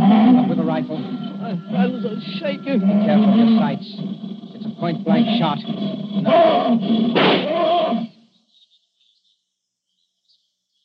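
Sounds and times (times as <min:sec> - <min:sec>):
lion roaring: 0:00.0 - 0:08.2
speech: 0:01.5 - 0:04.2, 0:04.8 - 0:07.6.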